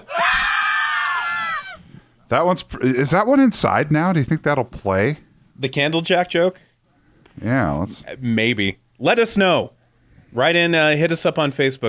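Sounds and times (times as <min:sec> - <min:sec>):
person screaming: 0:00.0 - 0:01.8
speech: 0:02.3 - 0:06.7, 0:07.4 - 0:11.8.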